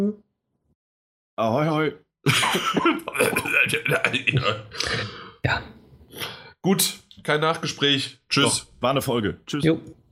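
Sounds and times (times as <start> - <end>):
speech: 1.4 - 10.0
person coughing: 2.4 - 5.4
person clearing throat: 2.6 - 5.4.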